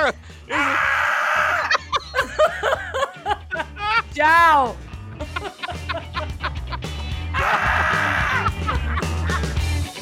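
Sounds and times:
laughter: 0.0 - 0.7, 1.4 - 4.1, 5.1 - 9.8
speech: 0.1 - 1.6, 4.2 - 5.6
goats bleating: 7.4 - 8.6.

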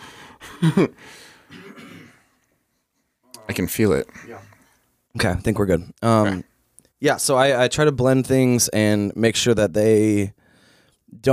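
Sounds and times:
speech: 0.6 - 1.3, 3.5 - 4.6, 5.2 - 10.4, 11.1 - 11.3
person coughing turned away from the microphone: 1.5 - 2.4.

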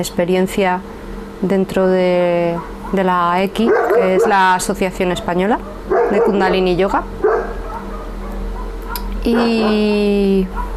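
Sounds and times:
speech: 0.0 - 7.2, 9.2 - 10.7
steady low hum: 0.0 - 10.7
dog bark: 2.6 - 4.6, 5.6 - 6.6, 7.2 - 10.7.

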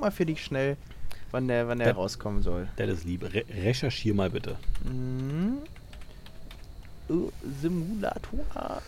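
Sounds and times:
speech: 0.0 - 5.8, 7.1 - 8.8
typing on a cheap computer keyboard: 4.5 - 6.9.

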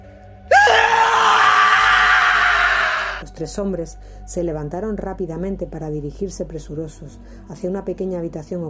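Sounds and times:
piercing scream: 0.5 - 3.2
speech: 3.4 - 8.6.

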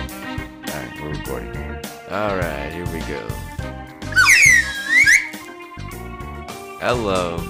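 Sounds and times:
speech: 2.1 - 3.5, 6.8 - 7.4
slide whistle gliding down and up in pitch: 4.2 - 5.4.

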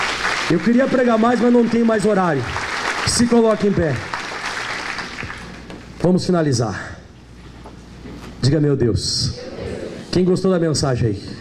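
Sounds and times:
crowd clapping loudly: 0.0 - 5.7
speech: 0.5 - 4.1, 6.0 - 6.9, 8.4 - 9.5, 10.1 - 11.3.

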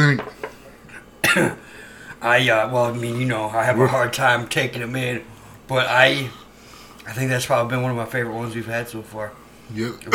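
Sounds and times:
hiss: 0.0 - 10.1
speech: 0.1 - 0.4, 1.3 - 6.4, 7.1 - 10.1
harsh cough: 1.0 - 1.6
breath: 1.6 - 2.2, 6.4 - 7.0.

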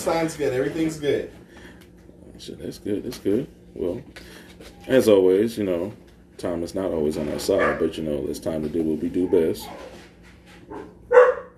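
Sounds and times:
speech: 0.0 - 1.4, 2.4 - 10.0
dog barking: 7.6 - 7.9, 10.7 - 11.5
dog yipping: 7.6 - 7.9, 9.2 - 10.1, 10.7 - 11.5.

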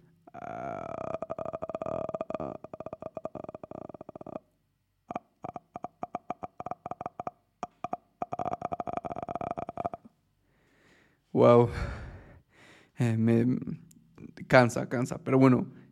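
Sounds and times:
person making a creaking mouth noise imitating a squeaky door opening: 0.0 - 10.2
speech: 11.4 - 12.0, 13.0 - 13.6, 14.5 - 15.8.

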